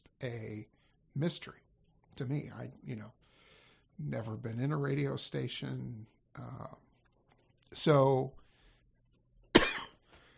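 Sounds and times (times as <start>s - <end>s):
speech: 0.2s - 1.6s, 2.2s - 3.3s, 4.0s - 6.9s, 7.7s - 8.4s
person coughing: 9.5s - 10.0s.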